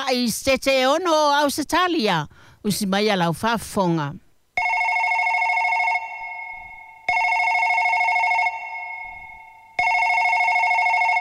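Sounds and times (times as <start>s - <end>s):
speech: 0.1s - 4.2s
telephone with electronic ring: 4.6s - 11.1s.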